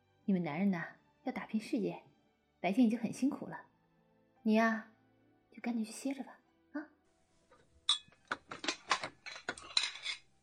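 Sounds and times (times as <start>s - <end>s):
speech: 0.3s - 3.7s, 4.4s - 4.9s, 5.6s - 6.9s
stacked bowls and chopsticks clinking while carried: 7.9s - 10.3s.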